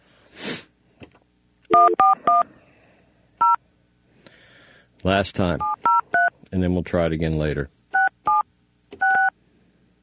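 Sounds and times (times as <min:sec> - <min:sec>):
touch-tone beeps of a phone number being dialed: 0:01.7 - 0:02.4, 0:05.6 - 0:06.3, 0:09.0 - 0:09.3
speech: 0:05.0 - 0:05.8, 0:06.5 - 0:07.8.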